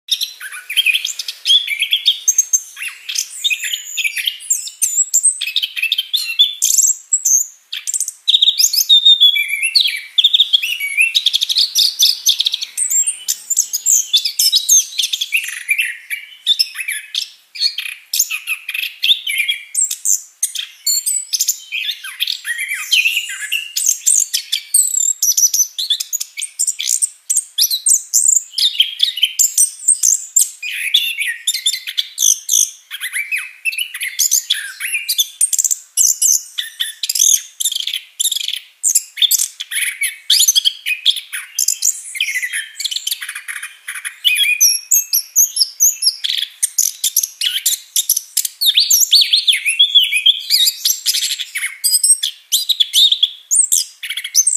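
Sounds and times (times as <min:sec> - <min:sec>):
white-eye bird singing with full varied song: 0:00.0 - 0:54.5.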